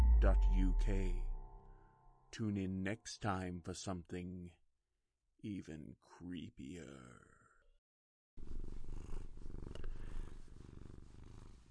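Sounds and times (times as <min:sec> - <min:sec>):
speech: 0:00.2 - 0:01.3, 0:02.3 - 0:04.6, 0:05.4 - 0:07.4
contented female cat purring: 0:08.4 - 0:11.6.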